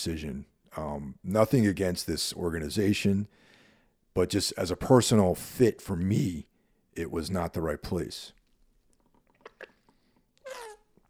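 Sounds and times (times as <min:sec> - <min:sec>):
speech: 0:00.0 - 0:03.5, 0:04.2 - 0:08.4
soft mouth clicks: 0:08.4 - 0:11.0
slurping sip of water from a water bottle: 0:08.9 - 0:11.0.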